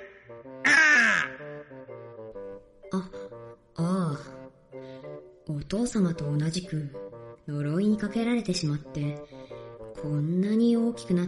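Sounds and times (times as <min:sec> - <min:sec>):
music: 0:00.0 - 0:11.2
large red bird cawing: 0:00.6 - 0:01.7
speech: 0:05.7 - 0:09.3, 0:10.0 - 0:11.2.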